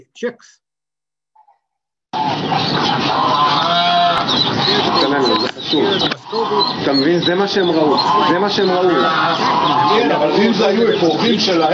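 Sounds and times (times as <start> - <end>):
speech: 0.0 - 0.6, 2.3 - 11.7
ducks quacking at a duck farm: 2.2 - 11.7.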